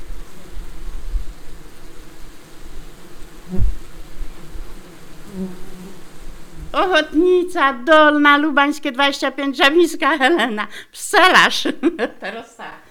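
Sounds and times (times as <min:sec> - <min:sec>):
bees producing a steady low droning buzz: 0:00.0 - 0:12.7
speech: 0:06.8 - 0:12.8
laughter: 0:09.4 - 0:12.8.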